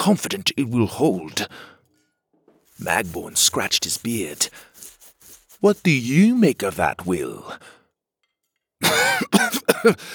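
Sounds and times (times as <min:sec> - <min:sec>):
speech: 0:00.0 - 0:01.8, 0:02.8 - 0:04.7, 0:05.6 - 0:07.8, 0:08.8 - 0:10.1
person coughing after choking on a drink: 0:08.8 - 0:10.1.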